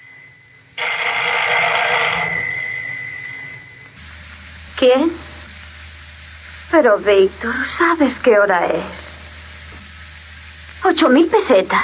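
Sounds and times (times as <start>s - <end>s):
telephone bell ringing as a call is placed: 0.8s - 3.9s
speech: 4.8s - 5.2s, 6.7s - 9.0s, 10.8s - 11.8s.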